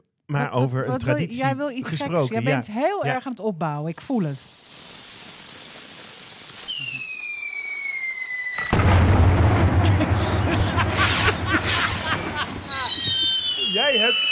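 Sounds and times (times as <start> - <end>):
speech: 0.3 - 4.6, 13.8 - 14.3
laughter: 0.7 - 2.6, 9.8 - 13.2
firework whistling: 4.4 - 14.3.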